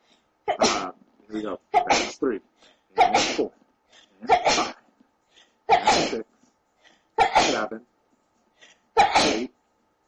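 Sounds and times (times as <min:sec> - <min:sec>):
loud sneezes: 0:00.5 - 0:00.9, 0:03.0 - 0:03.5, 0:04.2 - 0:04.8, 0:05.7 - 0:06.2, 0:07.2 - 0:07.8, 0:09.0 - 0:09.5
voice speaking quietly: 0:00.6 - 0:02.4, 0:07.5 - 0:07.8
speech: 0:01.4 - 0:03.6, 0:07.6 - 0:07.9.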